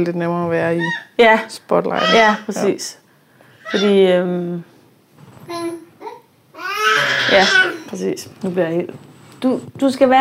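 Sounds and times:
speech: 0.0s - 3.0s, 3.7s - 4.7s, 6.9s - 10.2s
baby babbling: 2.0s - 2.7s, 3.6s - 4.0s, 5.5s - 7.9s.

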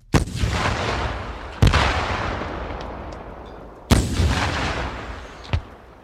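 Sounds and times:
bazooka projectiles exploding into stone-and-wood buildings: 0.1s - 6.0s.

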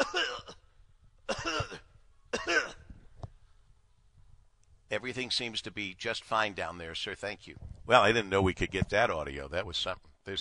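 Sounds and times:
short harsh coughs: 0.0s - 0.7s, 1.3s - 2.9s
speech: 5.0s - 10.4s.

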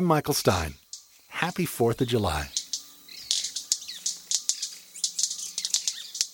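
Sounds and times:
speech: 0.0s - 0.8s, 1.4s - 2.6s
faint bird chirps: 0.7s - 6.3s
South American manakin wing snaps: 2.5s - 6.3s.

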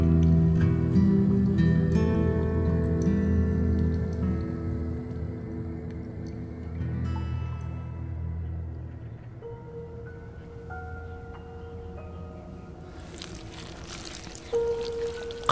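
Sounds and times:
water squeezed out of a wet cloth trickling: 0.1s - 7.0s, 12.9s - 15.5s
brief louder splash of pouring water: 12.9s - 15.5s.

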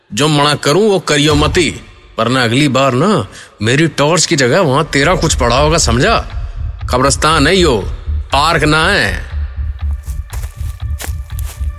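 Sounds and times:
speech: 0.1s - 9.3s
footsteps of someone walking: 9.7s - 11.7s.

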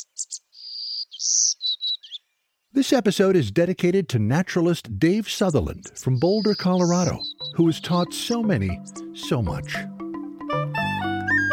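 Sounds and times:
speech: 0.0s - 0.4s, 2.8s - 9.9s
woodland songbird of the Americas singing buzzy notes: 0.0s - 2.8s, 5.2s - 11.5s.

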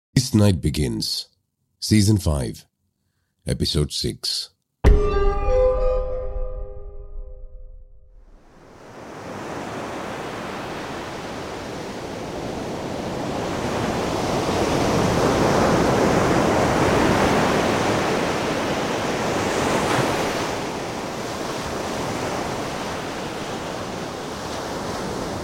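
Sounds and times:
speech: 0.2s - 2.7s, 3.4s - 5.1s
brief musical chime: 4.8s - 7.8s
ocean waves churning and breaking on a shore: 8.4s - 25.4s.

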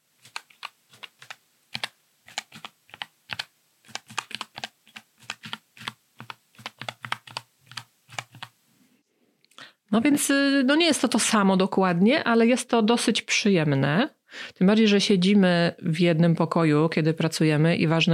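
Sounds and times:
typing on a real computer keyboard: 0.2s - 8.5s
speech: 10.0s - 18.1s.

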